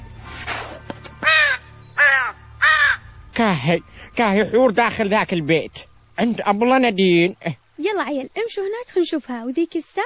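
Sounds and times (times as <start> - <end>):
crow cawing: 1.2 - 3.2
speech: 3.4 - 10.0.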